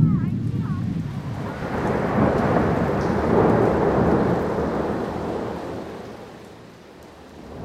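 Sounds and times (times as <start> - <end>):
low rumble: 0.0 - 4.6
heavy rain: 0.0 - 7.6.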